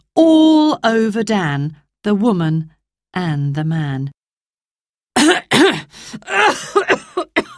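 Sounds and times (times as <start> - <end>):
speech: 0.2 - 4.2, 6.1 - 7.4
man coughing in a cloud of dust from a vacuum cleaner: 5.2 - 7.5.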